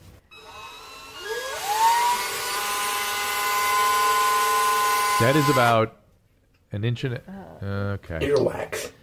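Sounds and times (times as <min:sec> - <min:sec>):
power drill spinning a Q-tip: 0:00.3 - 0:05.8
speech: 0:05.2 - 0:06.0, 0:06.7 - 0:09.0.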